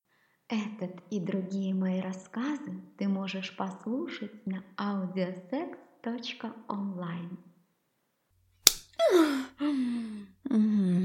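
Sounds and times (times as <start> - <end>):
speech: 0.5 - 7.5, 9.0 - 11.0
sharp loud slap across the face: 8.6 - 9.0
person gasping and moaning: 9.0 - 11.0.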